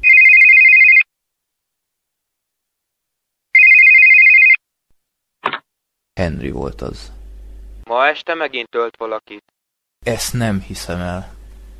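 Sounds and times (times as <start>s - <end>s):
telephone ringing at home: 0.0s - 1.1s, 3.5s - 4.6s
speech: 6.2s - 7.2s, 7.9s - 11.4s.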